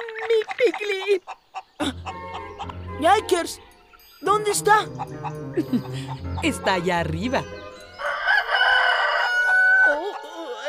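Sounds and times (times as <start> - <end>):
speech: 0.3 - 2.0, 3.0 - 7.6
chicken crowing: 7.9 - 10.6.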